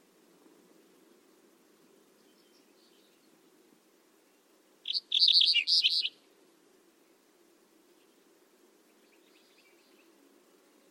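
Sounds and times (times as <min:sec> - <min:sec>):
bird chirping: 0:02.2 - 0:03.5, 0:04.3 - 0:06.3, 0:08.9 - 0:10.2.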